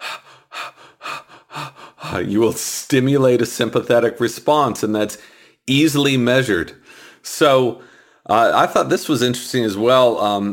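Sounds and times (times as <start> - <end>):
person breathing in rapid panicked gasps imitating hyperventilation: 0.0 - 2.3, 5.2 - 5.6, 6.8 - 7.2, 7.8 - 8.3
speech: 2.1 - 10.5.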